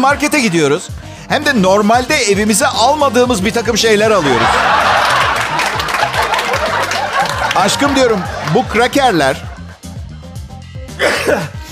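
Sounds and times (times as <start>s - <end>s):
speech: 0.0s - 5.6s, 7.6s - 9.6s, 11.0s - 11.6s
laughter: 4.0s - 9.8s
person sneezing: 11.0s - 11.7s.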